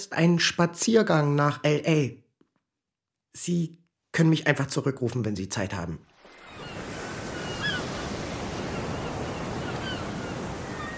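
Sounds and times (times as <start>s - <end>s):
speech: 0.0s - 2.2s, 3.4s - 6.1s
sea waves washing beside a pier: 6.0s - 10.9s
faint bird calls: 6.3s - 10.9s.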